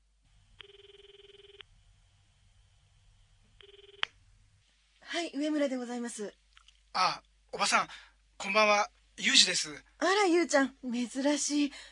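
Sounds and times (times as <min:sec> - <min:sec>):
low hum: 0:00.0 - 0:11.9
telephone ringback tone on an outgoing call: 0:00.6 - 0:01.6, 0:03.6 - 0:04.0
speech: 0:05.2 - 0:11.9.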